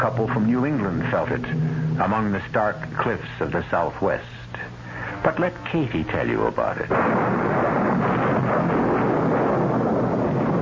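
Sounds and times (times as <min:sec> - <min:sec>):
thunder crashing and rolling overhead: 0:00.0 - 0:04.0, 0:06.8 - 0:10.6
speech: 0:00.0 - 0:08.8.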